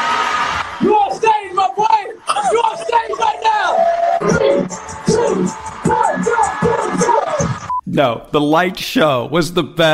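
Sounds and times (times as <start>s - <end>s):
crowd cheering and shouting with whoops and yells: 0.0s - 7.7s
speech: 8.0s - 9.9s.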